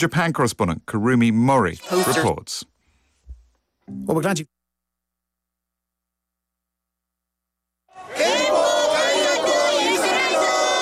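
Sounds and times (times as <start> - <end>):
speech: 0.0 - 2.7, 3.9 - 4.6
large crowd of anti-war protesters chanting on a Tokyo street: 1.8 - 2.3, 7.9 - 10.7.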